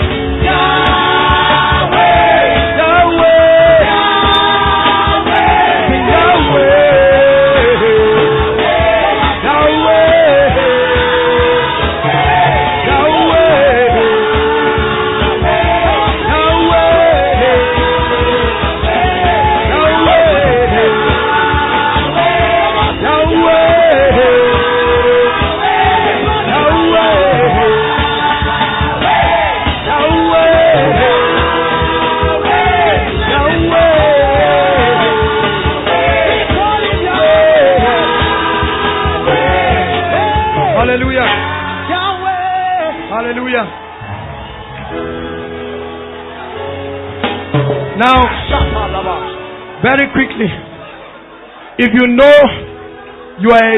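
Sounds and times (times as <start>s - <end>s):
large crowd shouting and yelling in triumphant celebration: 0.0s - 53.7s
speech: 51.8s - 52.6s.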